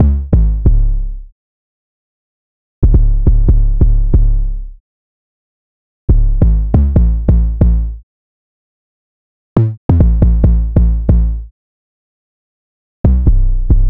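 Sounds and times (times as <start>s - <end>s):
808 bass in C minor: 0.0s - 1.2s, 2.8s - 4.7s, 6.1s - 8.0s, 9.6s - 11.5s, 13.1s - 13.8s.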